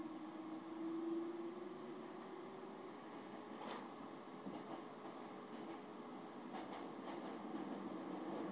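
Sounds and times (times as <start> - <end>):
interior rumble of a moving train: 0.0 - 8.4
sharp clacks from the rails passing underneath: 3.6 - 8.4.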